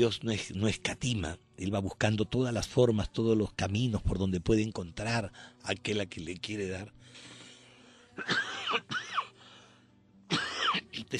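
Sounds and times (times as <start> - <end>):
speech: 0.0 - 7.3, 8.2 - 9.3
raspy coughs: 8.2 - 9.3, 10.3 - 11.1.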